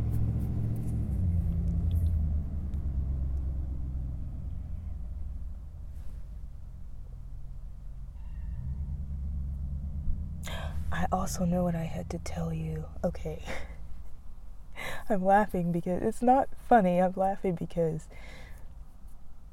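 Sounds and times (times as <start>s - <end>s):
truck engine rumbling past: 0.0s - 14.1s
speech: 10.5s - 13.7s, 15.1s - 18.4s.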